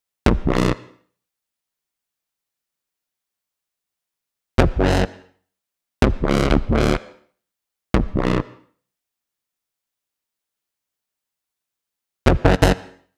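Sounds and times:
bass in B minor: 0.3 - 0.8, 4.6 - 5.2, 6.0 - 7.1, 8.0 - 8.5, 12.3 - 13.0.

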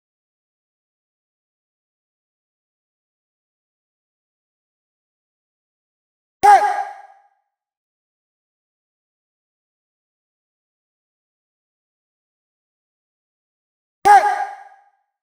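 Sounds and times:
shouted vocal in B flat minor at 126 BPM: 6.4 - 7.0, 14.1 - 14.6.

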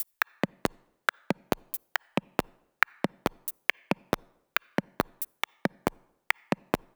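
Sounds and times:
percussion loop: 0.0 - 6.9.

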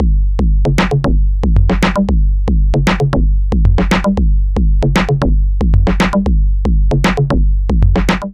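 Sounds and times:
digital breakbeat drums: 0.0 - 8.3.

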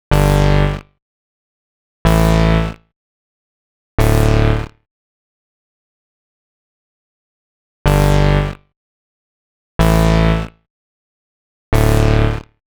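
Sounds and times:
electronic synth bass: 0.1 - 0.8, 2.1 - 2.8, 4.0 - 4.7, 7.9 - 8.6, 9.8 - 10.5, 11.8 - 12.4.

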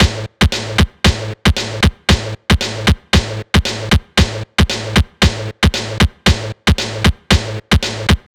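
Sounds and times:
ethno breakbeat loop at 115 BPM: 0.0 - 8.3.

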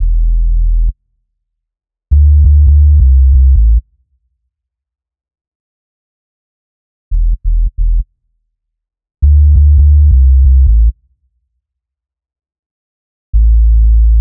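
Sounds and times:
bass loop in A minor: 0.0 - 0.9, 2.1 - 3.8, 7.1 - 8.0, 9.2 - 11.0, 13.4 - 14.2.

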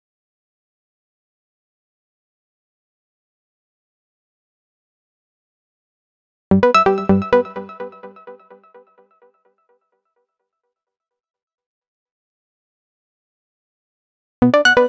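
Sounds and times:
complex electro synths playing an E minor arpeggio: 6.5 - 8.6.

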